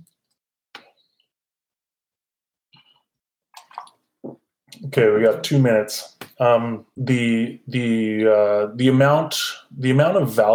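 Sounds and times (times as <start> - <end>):
person sipping and swallowing water: 2.8 - 4.9
speech: 4.9 - 10.5.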